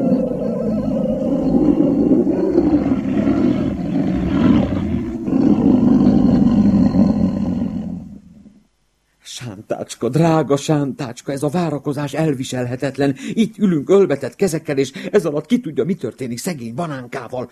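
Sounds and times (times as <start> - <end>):
lion roaring: 0.0 - 8.6
speech: 10.0 - 17.5.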